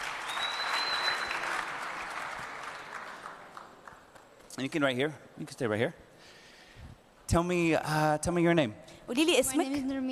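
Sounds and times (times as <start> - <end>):
audience clapping: 0.0 - 5.0
faint whistle: 0.2 - 1.5
speech: 4.6 - 6.4, 7.3 - 10.1.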